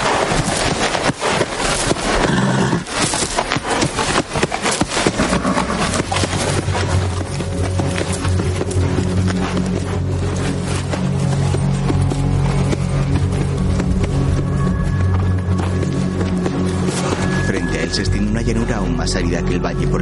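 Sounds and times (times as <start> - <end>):
tired horse's hooves clip-clopping at a walking pace: 0.0 - 19.2
dense continuous bed of music: 2.9 - 20.0
low rumble: 5.9 - 20.0
speech: 19.0 - 20.0.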